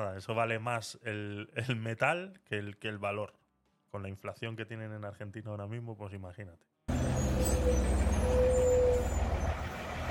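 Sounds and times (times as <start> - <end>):
speech: 0.0 - 9.2
thin air brake whine: 6.9 - 9.9
city bus engine droning low: 6.9 - 10.0.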